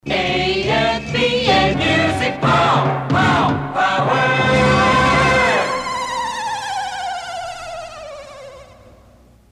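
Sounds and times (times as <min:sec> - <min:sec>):
music jingle: 0:00.6 - 0:06.8.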